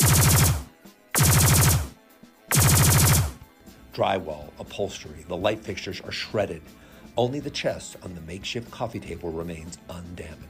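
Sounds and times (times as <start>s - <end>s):
rapid automatic gunfire sound effect of incoming fire: 0.0s - 3.4s
speech: 4.0s - 10.4s.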